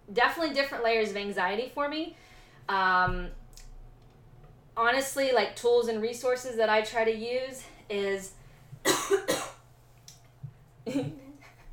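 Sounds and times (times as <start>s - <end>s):
speech: 0.1s - 3.4s, 4.8s - 8.4s, 10.9s - 11.2s
person coughing: 8.8s - 9.6s
person clearing throat: 8.9s - 9.6s.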